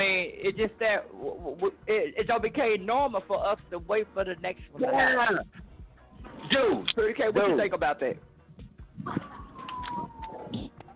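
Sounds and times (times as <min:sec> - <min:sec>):
speech: 0:00.4 - 0:05.6, 0:06.5 - 0:08.3
ambulance siren passing outside: 0:09.1 - 0:10.7.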